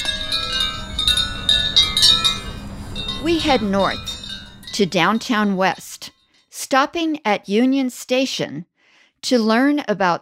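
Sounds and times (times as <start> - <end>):
metallic chimes of an outdoor art installation ringing: 0.0 - 6.5
speech: 3.2 - 4.1, 4.8 - 5.8, 6.7 - 10.1.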